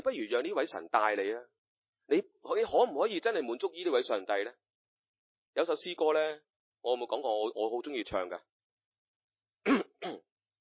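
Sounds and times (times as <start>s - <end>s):
speech: 0.2s - 4.6s, 5.6s - 8.5s, 9.6s - 10.3s
person clearing throat before singing a hymn: 9.7s - 10.3s.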